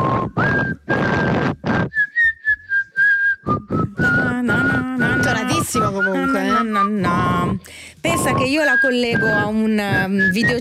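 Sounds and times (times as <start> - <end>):
person whistling an upbeat disco melody: 0.0 - 10.5
speech: 5.7 - 10.5.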